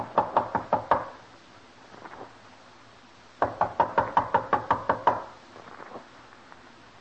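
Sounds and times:
firm knocking on a door: 0.0 - 1.2, 3.4 - 5.3.

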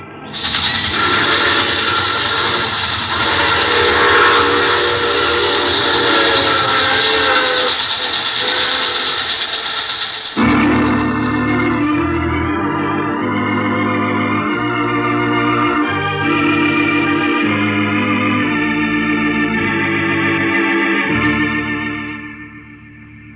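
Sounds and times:
train roaring: 0.0 - 22.5
long shrill train steam whistle wailing: 0.1 - 22.5.

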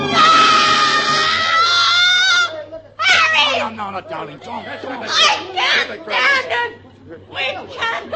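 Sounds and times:
woman shrieking: 0.1 - 3.6
laughter: 3.7 - 8.1
speech: 4.0 - 8.1.

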